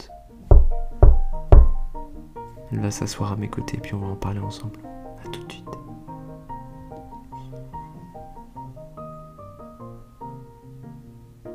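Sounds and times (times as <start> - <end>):
soft tonal music: 0.0 - 11.5
speech: 0.3 - 5.9
firm knocks on a door: 0.5 - 2.1.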